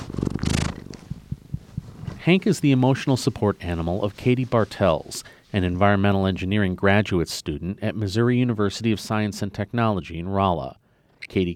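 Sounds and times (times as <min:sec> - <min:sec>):
tabby cat purring: 0:00.0 - 0:03.3
soft low thumps: 0:00.8 - 0:02.8
speech: 0:02.3 - 0:11.5.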